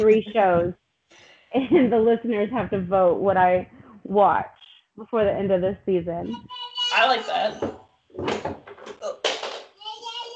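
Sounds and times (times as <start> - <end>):
speech: 0.0 - 9.0
little boy calling out in a high-pitched voice: 6.3 - 7.6, 9.8 - 10.3.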